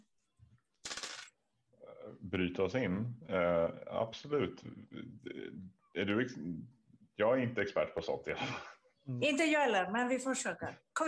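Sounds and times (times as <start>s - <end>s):
dice being rolled: 0.8s - 1.3s
speech: 2.1s - 11.0s.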